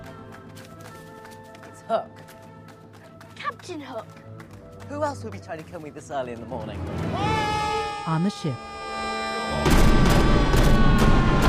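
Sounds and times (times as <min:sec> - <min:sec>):
dense sustained orchestral music: 0:00.0 - 0:11.4
speech: 0:01.9 - 0:02.3, 0:03.7 - 0:07.4, 0:08.0 - 0:08.7
ship's line of cannons firing: 0:09.6 - 0:11.4.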